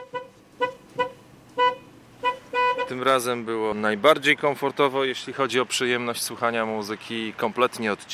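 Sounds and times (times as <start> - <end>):
car horn honking from parked car: 0.0 - 3.2
speech: 2.9 - 8.1.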